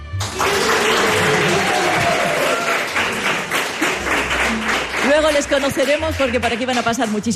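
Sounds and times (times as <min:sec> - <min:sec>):
room full of children clapping: 0:00.0 - 0:07.3
speech: 0:05.2 - 0:07.3.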